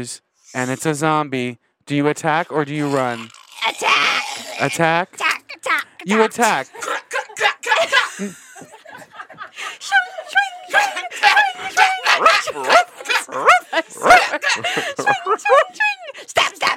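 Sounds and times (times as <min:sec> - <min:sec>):
speech: 0:00.0 - 0:05.2, 0:06.0 - 0:06.9, 0:07.8 - 0:08.7, 0:12.4 - 0:16.7
person mimicking a dog barking with woofs and yips: 0:02.4 - 0:07.9, 0:09.8 - 0:16.7
chuckling: 0:02.7 - 0:16.7.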